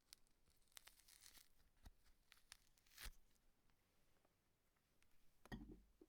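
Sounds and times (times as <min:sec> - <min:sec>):
object being peeled: 0:00.0 - 0:03.4.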